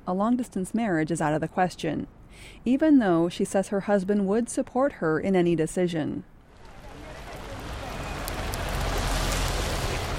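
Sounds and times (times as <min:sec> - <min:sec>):
speech: 0:00.0 - 0:06.3
heavy rain falling in Pune India: 0:06.5 - 0:10.1.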